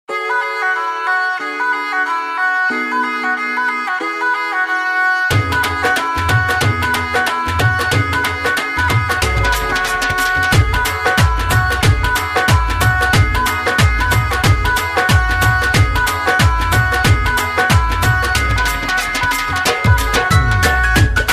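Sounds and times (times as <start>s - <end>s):
flute: 0.1s - 21.3s
drum: 5.3s - 21.3s.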